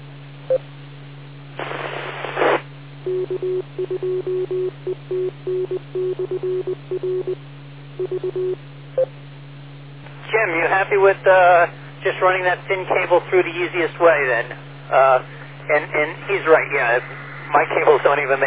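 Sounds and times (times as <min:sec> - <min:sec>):
steady low radio hum: 0:00.0 - 0:18.4
radio static hissing with no station: 0:01.5 - 0:02.7, 0:10.2 - 0:18.4
speech: 0:03.3 - 0:09.2, 0:10.4 - 0:18.4.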